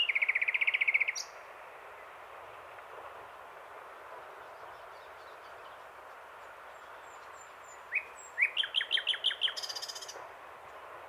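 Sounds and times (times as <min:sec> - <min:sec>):
common nightingale singing: 0:00.0 - 0:01.4, 0:04.4 - 0:06.0, 0:06.7 - 0:10.2.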